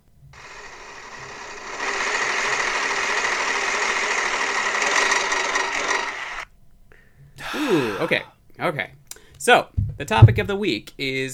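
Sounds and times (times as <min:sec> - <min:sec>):
spinning prize wheel clicking: 0:00.3 - 0:06.5
speech: 0:08.0 - 0:11.3.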